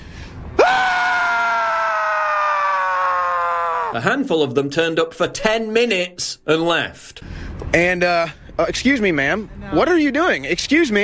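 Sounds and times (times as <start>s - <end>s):
man screaming loudly at a protest in Austin: 0.6s - 4.0s
speech: 3.9s - 11.0s.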